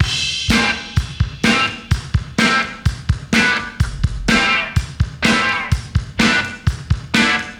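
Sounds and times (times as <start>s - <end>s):
1990s pop folk breakbeat sample in A: 0.0s - 7.5s.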